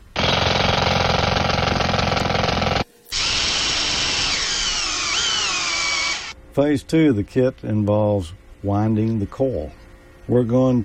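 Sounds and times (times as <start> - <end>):
power drill boring into a board: 0.0 - 6.4
speech: 6.6 - 10.8.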